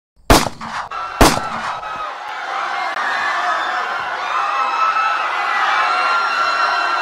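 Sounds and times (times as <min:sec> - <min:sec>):
gunshot: 0:00.3 - 0:02.0
crowd: 0:00.7 - 0:07.0.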